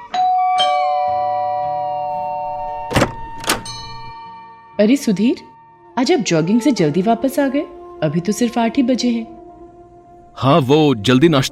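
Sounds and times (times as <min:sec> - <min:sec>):
doorbell two-note ding-dong chime: 0:00.1 - 0:04.6
speech: 0:04.8 - 0:09.4, 0:10.4 - 0:11.4.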